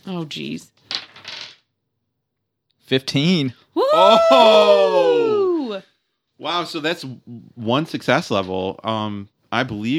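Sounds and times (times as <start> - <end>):
speech: 0.0 - 0.8, 2.9 - 9.9
dice tumbling across a hard tabletop: 0.8 - 1.7.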